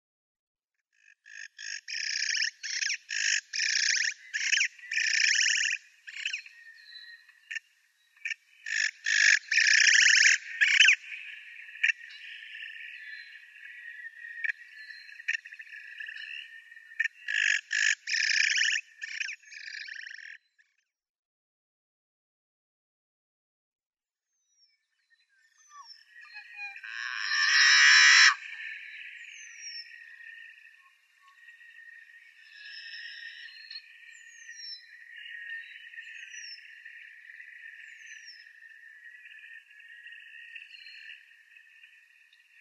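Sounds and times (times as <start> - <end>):
Yellow-headed Blackbird song: 1.2 - 20.8, 24.3 - 42.5.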